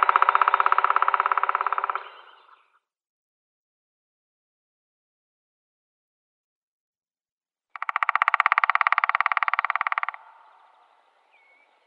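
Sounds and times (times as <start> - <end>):
Black woodpecker drumming: 0.0 - 2.7, 7.8 - 11.8.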